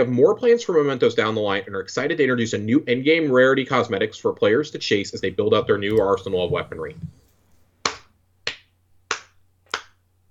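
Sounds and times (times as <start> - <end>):
speech: 0.0 - 7.2
faint low hum: 3.7 - 7.8
slow deliberate hand claps: 7.9 - 10.0.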